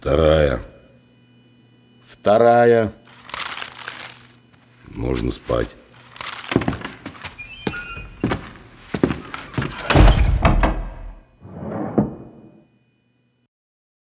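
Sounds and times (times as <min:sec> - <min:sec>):
speech: 0:00.0 - 0:00.7, 0:02.2 - 0:03.0, 0:05.0 - 0:05.8
heavy door swinging shut: 0:09.4 - 0:12.5.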